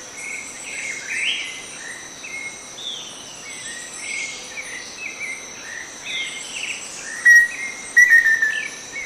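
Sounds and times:
steady hiss of insects: 0.0 - 9.0
Black-faced antthrush Formicarius analis whistled song: 7.1 - 9.0.

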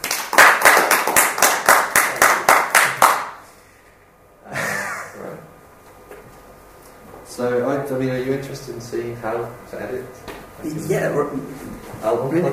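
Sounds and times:
steady rhythmic audience applause hand claps: 0.0 - 3.4
speech: 7.4 - 12.5.

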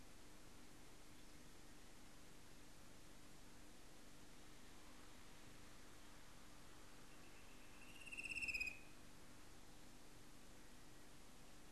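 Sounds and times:
gentle background noise: 0.0 - 11.7
fan-tailed cuckoo giving a quick high trill: 7.8 - 8.9.

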